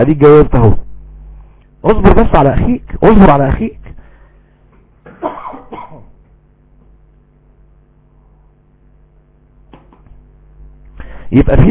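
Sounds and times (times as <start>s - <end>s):
speech: 0.0s - 0.8s, 1.8s - 3.8s, 11.3s - 11.6s
man coughing in harsh bursts: 5.0s - 6.2s.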